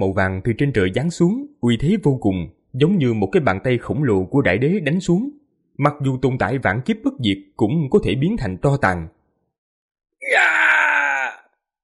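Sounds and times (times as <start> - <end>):
speech: 0.0 - 9.2
person giving a terrified agonized scream: 10.2 - 11.6.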